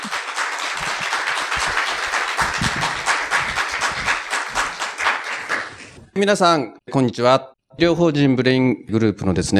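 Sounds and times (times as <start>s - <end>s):
lecture audience applause welcoming a speaker: 0.0s - 6.0s
speech: 6.2s - 9.5s.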